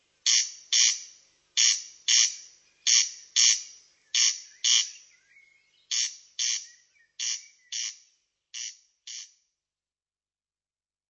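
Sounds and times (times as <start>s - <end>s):
corn crake rasping crex-crex call: 0.2s - 5.0s, 5.9s - 8.0s, 8.6s - 9.4s.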